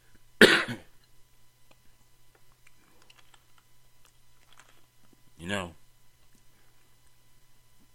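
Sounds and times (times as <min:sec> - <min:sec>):
person coughing: 0:00.4 - 0:01.0.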